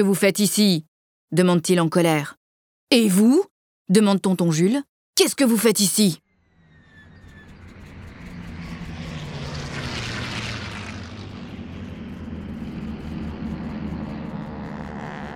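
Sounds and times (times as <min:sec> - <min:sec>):
speech: 0:00.0 - 0:06.2
broad rushing roar of airplanes overhead: 0:06.3 - 0:15.3
two airplanes flying overhead with low engine drone: 0:06.3 - 0:15.3.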